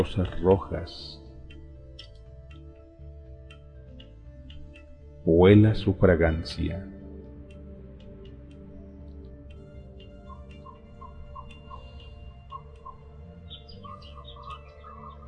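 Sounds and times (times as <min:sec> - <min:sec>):
speech: 0:00.0 - 0:01.2, 0:05.2 - 0:07.0
faint ticking clicks: 0:00.0 - 0:05.3, 0:06.4 - 0:15.2
bird chirps and tweets: 0:10.2 - 0:15.2.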